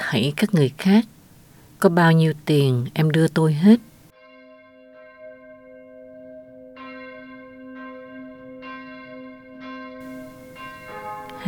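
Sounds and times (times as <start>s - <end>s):
speech: 0.1s - 1.2s, 1.8s - 3.9s
church bells tolling: 4.1s - 11.4s.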